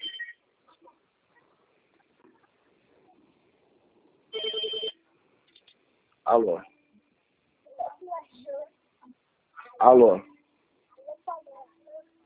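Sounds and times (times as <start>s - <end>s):
faint noise: 0.0s - 12.2s
electronic telephone ring: 4.3s - 5.0s
speech: 6.3s - 6.7s, 9.8s - 10.3s.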